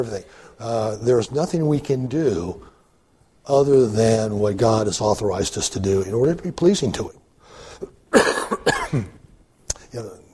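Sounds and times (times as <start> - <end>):
speech: 0.0 - 2.7, 3.4 - 9.2, 9.9 - 10.2
man coughing raspy coughs: 8.1 - 9.2.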